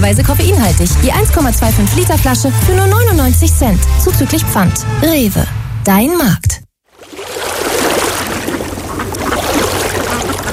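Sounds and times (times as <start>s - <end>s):
speech: 0.0s - 6.6s
rushing and lapping water of a lake, spring and river in Bavaria: 6.9s - 10.5s.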